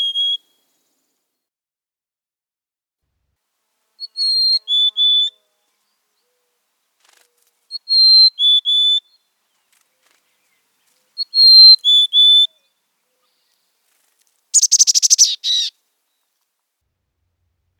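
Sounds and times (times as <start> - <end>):
Mountain Chickadee whistled song: 0.0 - 0.7, 4.0 - 5.4, 7.7 - 9.2, 11.2 - 12.7, 14.6 - 15.7.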